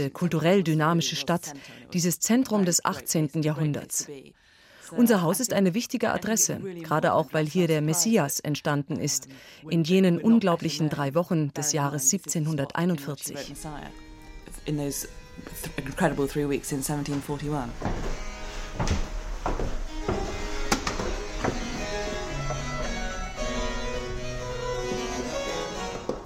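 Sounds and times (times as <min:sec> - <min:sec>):
speech: 0:00.0 - 0:14.0, 0:14.6 - 0:18.2
18th-century wooden stairs creaking underfoot in a composer's house museum: 0:15.4 - 0:26.2.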